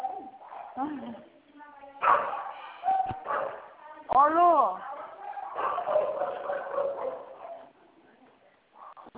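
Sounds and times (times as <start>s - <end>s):
dog barking: 0.0s - 0.8s, 2.0s - 3.7s, 5.0s - 7.7s
speech: 0.8s - 1.3s.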